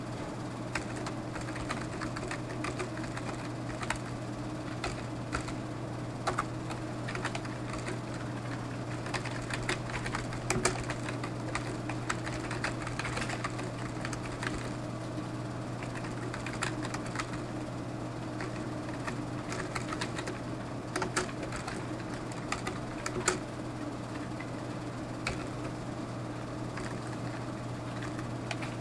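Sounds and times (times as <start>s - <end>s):
constant low hum: 0.0s - 28.8s
typing on a computer keyboard while entering user information: 0.7s - 4.1s, 4.7s - 5.6s, 6.2s - 14.8s, 15.8s - 17.4s, 18.4s - 23.4s, 25.2s - 25.7s, 26.8s - 28.8s.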